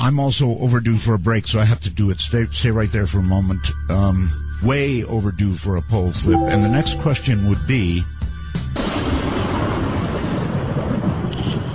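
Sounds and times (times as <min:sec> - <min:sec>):
speech: 0:00.1 - 0:08.1
rolling thunder with a sharp crack: 0:09.0 - 0:11.7.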